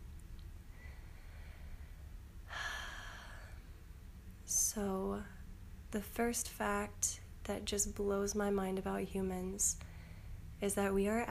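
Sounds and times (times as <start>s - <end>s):
deep breath in a guided breathing exercise: 0.7s - 3.8s, 9.8s - 10.5s
speech: 4.8s - 5.3s, 5.9s - 9.9s, 10.6s - 11.3s.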